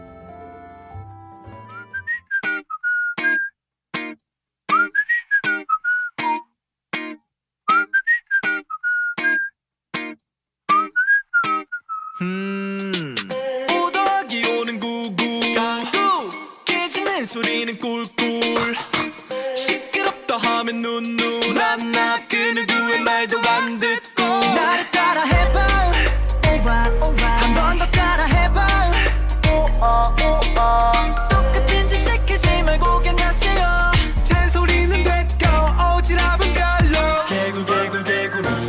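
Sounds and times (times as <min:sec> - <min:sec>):
bouncy whistled melody: 0:00.0 - 0:03.6, 0:04.7 - 0:06.6, 0:07.7 - 0:09.6, 0:10.7 - 0:12.2
K-pop song: 0:12.2 - 0:38.6.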